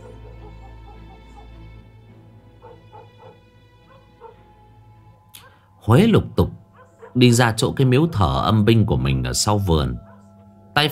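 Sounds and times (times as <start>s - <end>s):
dogs barking at night in a village: 0.0s - 4.7s, 5.4s - 5.8s, 6.6s - 8.6s, 9.8s - 10.5s
speech: 5.8s - 6.6s, 7.2s - 10.1s, 10.8s - 10.9s.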